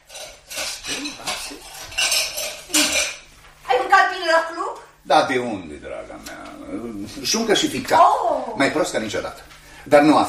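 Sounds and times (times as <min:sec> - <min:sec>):
dishes and cutlery clattering while washing up at a sink: 0:00.0 - 0:03.3
speech: 0:05.2 - 0:10.2.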